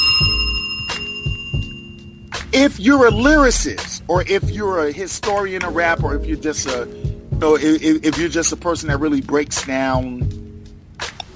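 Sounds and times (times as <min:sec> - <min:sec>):
bell ringing with a bright metallic tone: 0:00.0 - 0:03.6
speech: 0:02.6 - 0:10.3
dull low thumps: 0:03.1 - 0:04.7, 0:06.0 - 0:06.4, 0:07.0 - 0:07.5, 0:08.8 - 0:09.1, 0:10.0 - 0:10.7.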